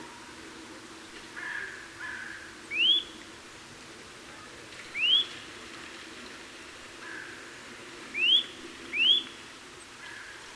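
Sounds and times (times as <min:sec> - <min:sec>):
soft background hiss: 0:00.0 - 0:10.5
Eurasian nuthatch Sitta europaea giving clear upslurred whistled calls: 0:02.7 - 0:03.2, 0:04.9 - 0:05.3, 0:08.2 - 0:09.4.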